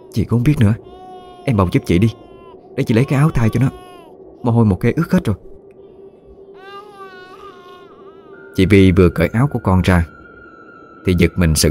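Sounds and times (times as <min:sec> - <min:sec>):
baby girl crying hard: 0:00.0 - 0:05.2, 0:06.5 - 0:09.2
steady low tone: 0:00.0 - 0:11.7
speech: 0:00.2 - 0:03.8, 0:04.4 - 0:05.5, 0:08.6 - 0:10.2, 0:11.0 - 0:11.7.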